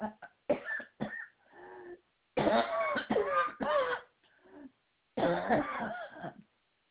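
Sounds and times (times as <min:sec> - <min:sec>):
harsh coughing fit: 0:00.0 - 0:01.3, 0:02.4 - 0:04.1, 0:05.2 - 0:06.4
raspy throat clearing: 0:00.0 - 0:01.4, 0:02.4 - 0:04.1, 0:05.2 - 0:06.5
strained wheezy breaths: 0:01.4 - 0:02.0.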